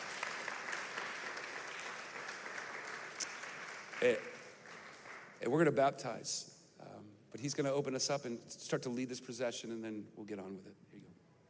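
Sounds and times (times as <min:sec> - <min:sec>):
audience clapping for speaker: 0:00.0 - 0:05.5
speech: 0:04.0 - 0:04.3, 0:05.4 - 0:11.1.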